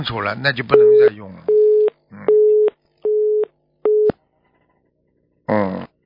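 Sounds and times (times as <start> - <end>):
speech: 0.0 - 1.5, 5.5 - 5.9
telephone busy tone beeps after call disconnects: 0.8 - 4.1.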